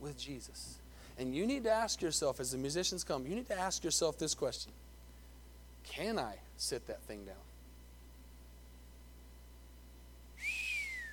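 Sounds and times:
speech: 0:00.0 - 0:04.9, 0:05.9 - 0:07.5
quiet hum: 0:00.0 - 0:11.1
person whistling: 0:10.4 - 0:11.1.

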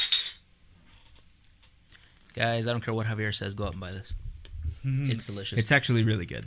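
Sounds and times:
glass root beer bottles clinking in a toast: 0:00.0 - 0:00.4
speech: 0:02.4 - 0:06.4.

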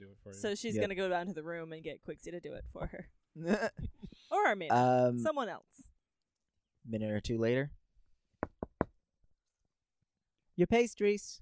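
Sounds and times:
speech: 0:00.2 - 0:05.9, 0:06.8 - 0:07.8, 0:10.6 - 0:11.4
quick firm knocks on a door: 0:08.4 - 0:09.0.

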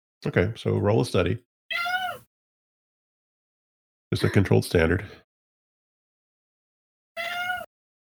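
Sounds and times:
speech: 0:00.2 - 0:01.5, 0:04.1 - 0:05.2
cat meowing: 0:01.7 - 0:02.3, 0:07.2 - 0:07.7.

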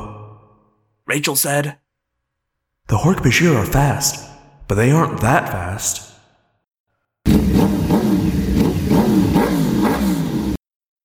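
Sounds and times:
speech: 0:01.1 - 0:01.8, 0:02.9 - 0:06.1
Yamaha and Kawasaki dirt bike engines starting and revving: 0:07.3 - 0:10.6.

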